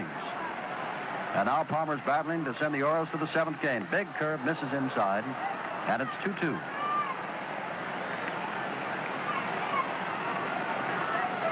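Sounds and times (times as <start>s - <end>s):
dense roar of a large stadium crowd: 0.0s - 11.5s
speech: 1.4s - 6.7s.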